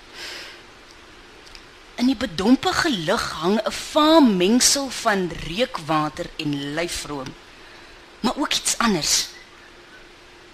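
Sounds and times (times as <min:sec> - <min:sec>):
hiss: 0:00.0 - 0:10.5
person sniffing through the nose: 0:00.1 - 0:00.6
faint soft clicks: 0:00.8 - 0:01.7
speech: 0:02.0 - 0:07.4, 0:08.3 - 0:09.3.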